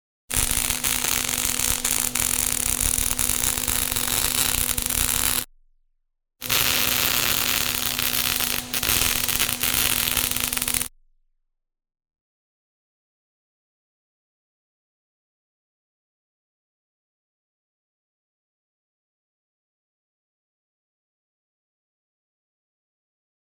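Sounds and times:
welding: 0.3s - 5.5s, 6.4s - 10.9s.

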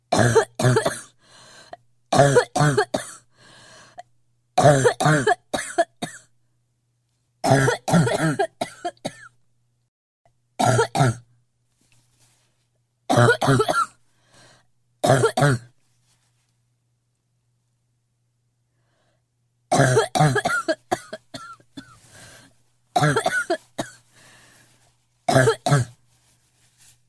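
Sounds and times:
woman coughing: 0.1s - 1.2s, 2.2s - 3.3s, 4.6s - 6.3s, 7.4s - 9.4s, 10.6s - 11.3s, 13.1s - 14.0s, 15.0s - 15.7s, 19.7s - 22.0s, 23.0s - 24.0s, 25.3s - 26.0s.

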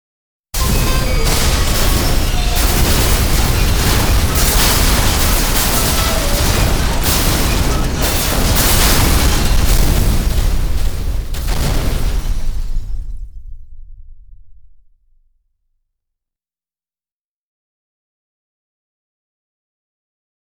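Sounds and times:
metro train crash: 0.6s - 14.8s.

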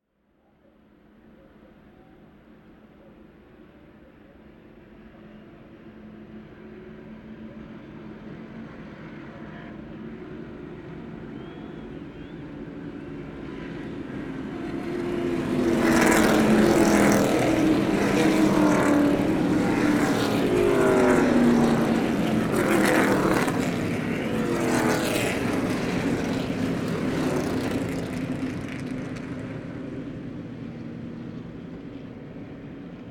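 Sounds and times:
cars racing: 7.4s - 33.0s.

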